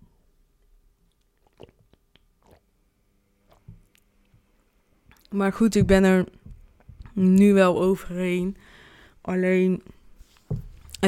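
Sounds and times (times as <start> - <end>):
quiet hum: 0.0 - 11.0
person taking a quick sip of water: 1.1 - 2.8, 3.4 - 4.4
gulps: 1.4 - 2.6
speech: 5.3 - 6.4, 7.2 - 10.0.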